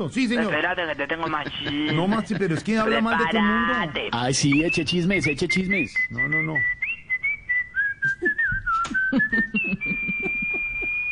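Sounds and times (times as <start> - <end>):
speech: 0.0 - 6.9, 9.5 - 10.1
laughter: 1.1 - 3.2, 8.0 - 11.0
sustained whistled tone: 4.5 - 11.1
soft rhythmic thumping: 7.8 - 11.0.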